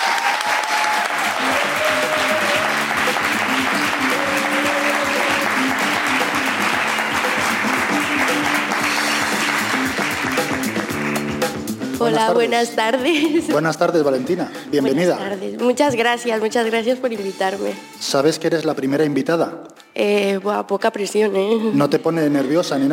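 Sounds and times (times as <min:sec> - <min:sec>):
audience applause: 0:00.0 - 0:11.6
speech: 0:12.1 - 0:22.9.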